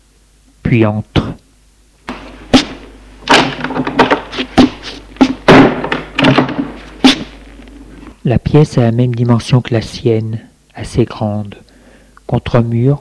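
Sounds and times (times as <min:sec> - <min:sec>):
speech: 0:00.7 - 0:01.4, 0:08.3 - 0:11.6, 0:12.3 - 0:12.9
wooden thuds and knocks: 0:02.0 - 0:07.4
door slamming shut: 0:02.1 - 0:07.4.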